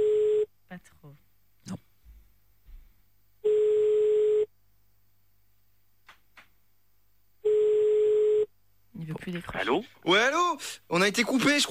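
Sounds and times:
telephone ringing tone while calling a listener back: 0.0s - 0.5s, 3.4s - 4.5s, 7.4s - 8.5s
speech: 9.3s - 11.6s.

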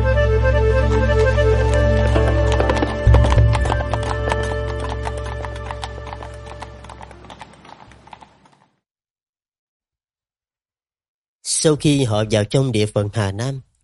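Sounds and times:
hooves of a group of horses clip-clopping as they ride off: 0.1s - 8.7s
speech: 11.6s - 13.7s.

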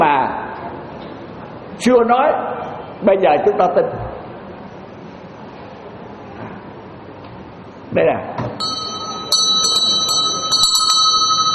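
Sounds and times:
speech: 1.8s - 4.0s, 7.9s - 8.7s
bell struck repeatedly and ringing: 8.6s - 11.5s.

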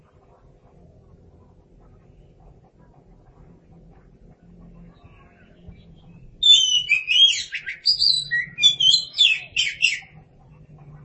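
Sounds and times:
Oriental magpie-robin singing clear whistles and scratchy twittering notes: 6.4s - 10.2s.

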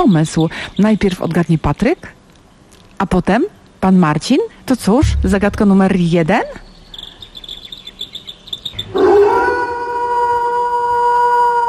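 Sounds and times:
speech: 0.0s - 2.2s, 3.0s - 6.7s
wolf howling: 8.9s - 11.6s.

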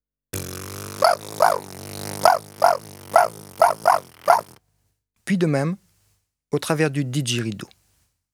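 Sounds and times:
human voice imitating a prairie dog call with buzzing lips: 0.4s - 4.6s
speech: 5.3s - 5.8s, 6.5s - 7.8s.

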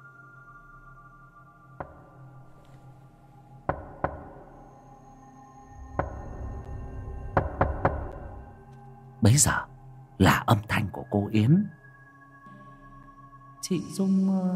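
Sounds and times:
sharp quiet knocking on a door: 3.7s - 4.3s, 6.0s - 6.3s, 7.4s - 8.2s
speech: 9.2s - 11.8s, 13.7s - 14.5s.

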